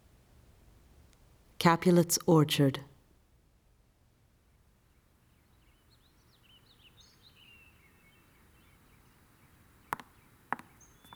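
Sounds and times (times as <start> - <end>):
speech: 1.6 - 2.9
songbird chirping and warbling at dawn: 5.1 - 11.1.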